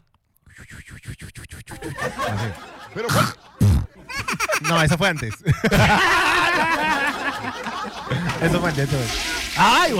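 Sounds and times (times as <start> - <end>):
laughter: 1.7 - 9.6
speech: 2.3 - 3.5, 4.6 - 9.9
voice imitating a toilet flushing: 8.1 - 9.9.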